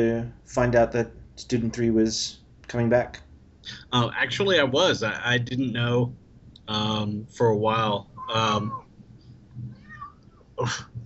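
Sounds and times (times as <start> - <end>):
speech: 0.0 - 8.8, 10.6 - 11.0
cat meowing demanding attention: 8.1 - 8.8, 9.7 - 10.3.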